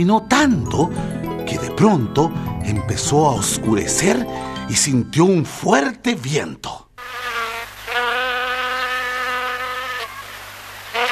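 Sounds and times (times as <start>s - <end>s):
speech: 0.0s - 6.8s
insect buzzing sound effect: 7.0s - 11.1s.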